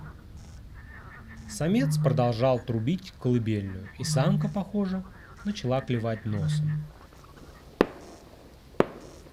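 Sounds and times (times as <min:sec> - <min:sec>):
speech: 0:01.6 - 0:07.0
distant gunshots: 0:07.8 - 0:09.3.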